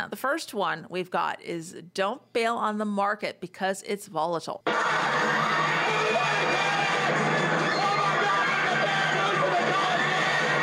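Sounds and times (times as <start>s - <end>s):
speech: 0.0s - 7.3s
panicked crowd screaming from a movie clip: 4.7s - 10.6s.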